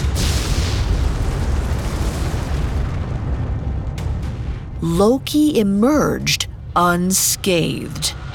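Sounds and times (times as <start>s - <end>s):
rocks bursting outward from a pile of debris: 0.0s - 4.2s
speech: 4.8s - 8.2s.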